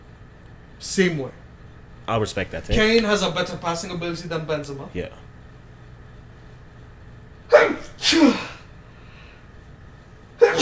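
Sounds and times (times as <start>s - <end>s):
quiet hum: 0.0s - 10.5s
speech: 0.8s - 1.4s, 2.1s - 5.3s
person sneezing: 7.5s - 8.6s, 10.4s - 10.5s.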